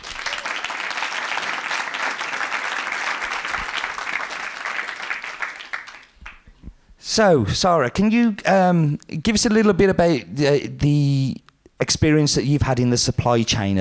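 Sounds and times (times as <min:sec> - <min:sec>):
audience applause from a sizable crowd: 0:00.0 - 0:06.5
speech: 0:07.2 - 0:13.7.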